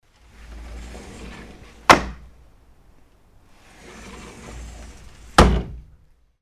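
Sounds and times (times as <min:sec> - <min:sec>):
sliding window opening and closing: 0:00.0 - 0:02.4, 0:03.5 - 0:06.1.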